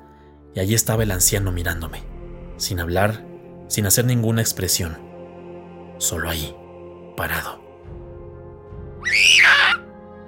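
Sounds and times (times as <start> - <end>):
speech: 0.5 - 5.1, 6.0 - 6.6, 7.2 - 7.6
man in bed screaming in terror: 9.0 - 9.8.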